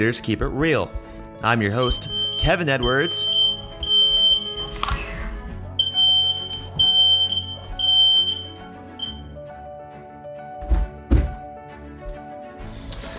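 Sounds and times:
speech: 0:00.0 - 0:03.4
smoke alarm beeping in a house: 0:01.7 - 0:05.0, 0:05.8 - 0:09.3
dull thumps and clatter: 0:10.6 - 0:11.4.

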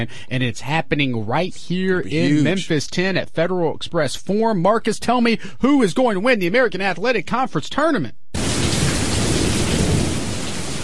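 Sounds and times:
speech: 0:00.0 - 0:08.2
heavy rain downpour: 0:08.4 - 0:10.8.

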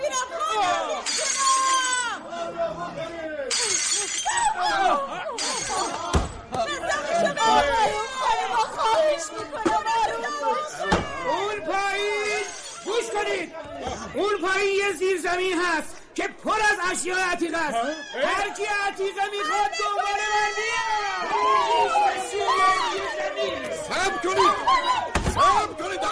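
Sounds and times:
excited crowd shouting and chattering: 0:00.0 - 0:26.0
glass window being smashed: 0:03.5 - 0:04.4, 0:05.4 - 0:06.4
speech: 0:14.4 - 0:15.9, 0:16.8 - 0:26.0.

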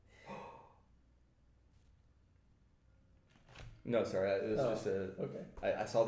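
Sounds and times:
person gasping: 0:00.0 - 0:00.9
speech: 0:03.8 - 0:06.0.

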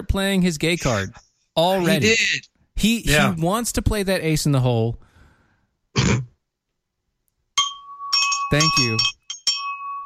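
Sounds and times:
speech: 0:00.1 - 0:05.1, 0:06.0 - 0:06.3, 0:08.5 - 0:09.2
throat clearing: 0:06.0 - 0:06.4
bell-like sound effect with a sustained bright tone: 0:07.6 - 0:10.0.

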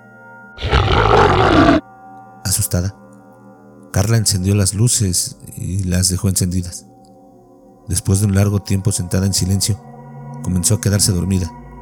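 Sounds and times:
loud deep menacing growl: 0:00.6 - 0:01.8
speech: 0:02.5 - 0:03.0, 0:03.9 - 0:06.9, 0:07.9 - 0:11.6.

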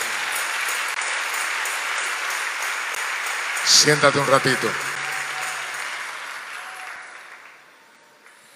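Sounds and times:
audience applauding: 0:00.0 - 0:08.5
speech: 0:03.6 - 0:04.9.

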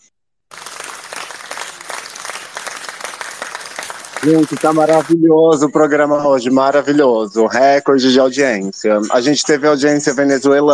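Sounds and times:
crowd applauding: 0:00.5 - 0:05.2
speech: 0:04.2 - 0:10.7.

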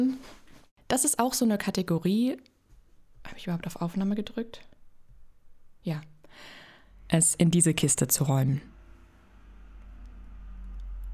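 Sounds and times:
speech: 0:00.0 - 0:02.5, 0:03.2 - 0:04.7, 0:05.8 - 0:08.7
car or truck rumbling past outside: 0:08.6 - 0:11.1.

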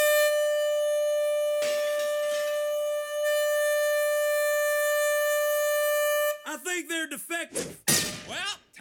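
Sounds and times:
air horns blaring: 0:00.0 - 0:06.5
speech: 0:06.6 - 0:08.8.

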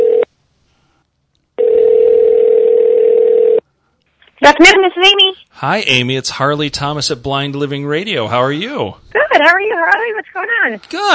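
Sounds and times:
buzzy telephone ringback tone: 0:00.0 - 0:00.3, 0:01.6 - 0:03.6
speech: 0:04.5 - 0:11.1.

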